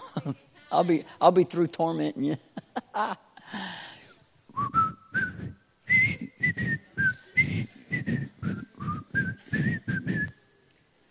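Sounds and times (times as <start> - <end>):
speech: 0.2 - 3.8
person whistling a short melody: 4.6 - 10.4.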